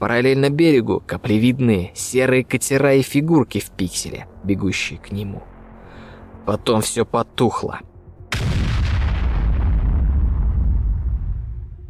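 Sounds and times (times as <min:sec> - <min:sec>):
speech: 0:00.0 - 0:05.5, 0:06.4 - 0:08.5
explosion in a combat setting near the shore with heavy low rumbling roar: 0:08.3 - 0:11.8.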